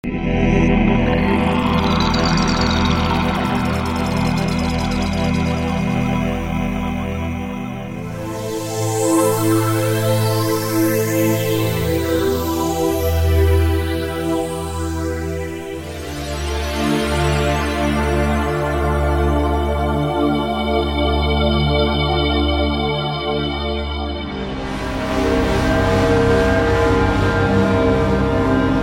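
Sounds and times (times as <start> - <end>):
atmosphere: 0.0 - 28.7.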